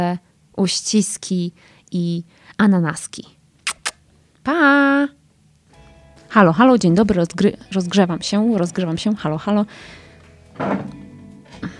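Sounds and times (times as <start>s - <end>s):
speech: 0.0s - 3.4s, 4.4s - 5.2s, 6.3s - 10.0s, 10.6s - 11.0s
dull wooden thunk of a chair being bumped or shifted: 10.2s - 11.7s.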